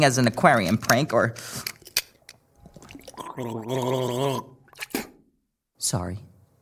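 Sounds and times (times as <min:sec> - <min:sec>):
speech: 0:00.0 - 0:01.7, 0:03.4 - 0:05.1, 0:05.8 - 0:06.3
sharp clicks and wet mouth sounds: 0:02.6 - 0:05.2
person gargling: 0:02.7 - 0:05.2.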